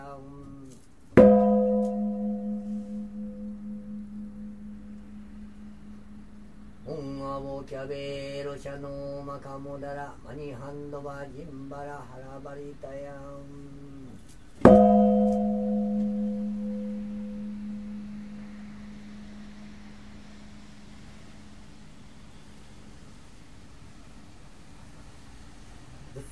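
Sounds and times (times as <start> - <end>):
Japanese Buddhist temple bell ringing: 1.2 - 8.3, 14.7 - 22.8.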